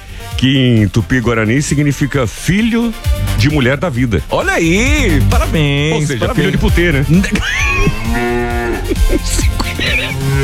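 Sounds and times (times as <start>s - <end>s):
speech: 0.4s - 10.4s
laughter: 4.8s - 10.4s
cow mooing: 7.6s - 9.2s.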